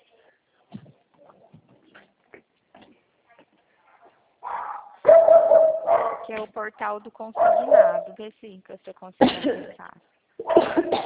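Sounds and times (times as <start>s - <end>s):
dog barking: 3.9s - 6.3s, 7.4s - 8.2s
speech: 6.3s - 11.0s.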